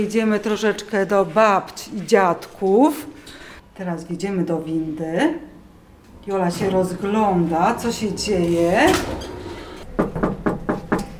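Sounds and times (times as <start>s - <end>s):
speech: 0.0s - 5.5s, 6.2s - 9.3s
low noise: 0.0s - 11.1s
knocking on a door: 10.0s - 11.1s.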